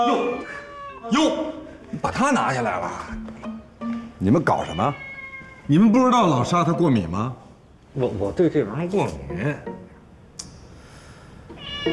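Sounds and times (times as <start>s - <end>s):
cat in an upstairs room meowing: 0.0s - 1.3s, 4.4s - 5.9s, 11.6s - 11.9s
speech: 0.0s - 3.5s, 4.2s - 5.1s, 5.7s - 7.4s, 8.0s - 9.9s.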